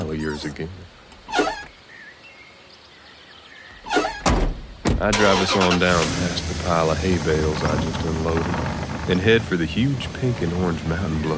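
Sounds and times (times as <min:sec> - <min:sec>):
speech: 0:00.2 - 0:01.5, 0:05.0 - 0:11.3
truck passenger door yanked open with rattling latch and metallic scrape: 0:01.2 - 0:01.7, 0:03.9 - 0:06.7
truck passenger door solid thunk: 0:03.9 - 0:05.1.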